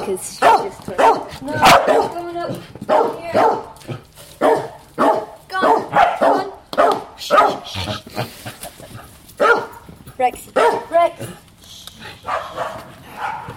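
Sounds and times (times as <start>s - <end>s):
speech: 0.1s - 4.0s
dog barking: 0.4s - 2.2s, 2.9s - 7.7s, 9.4s - 9.8s, 10.6s - 10.9s, 12.2s - 13.5s
dog yelping: 0.4s - 3.7s, 4.4s - 7.9s, 9.4s - 9.8s, 10.6s - 10.9s.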